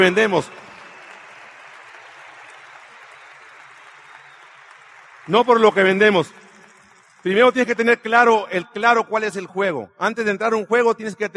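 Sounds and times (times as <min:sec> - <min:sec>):
speech: 0:00.0 - 0:00.6, 0:05.3 - 0:06.4, 0:07.2 - 0:11.3
audience applause: 0:00.0 - 0:07.7.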